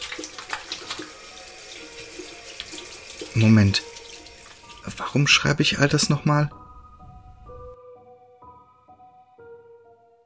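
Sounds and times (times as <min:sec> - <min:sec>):
water running from a bathroom tap: 0:00.0 - 0:05.6
speech: 0:03.4 - 0:03.9, 0:05.1 - 0:06.6.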